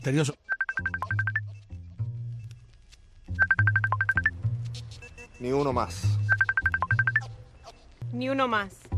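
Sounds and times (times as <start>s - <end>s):
speech: 0.0s - 0.9s, 5.4s - 6.4s, 8.1s - 8.8s
phone ringtone of quick bright electronic beeps: 0.5s - 1.5s, 3.4s - 4.3s, 6.2s - 7.3s.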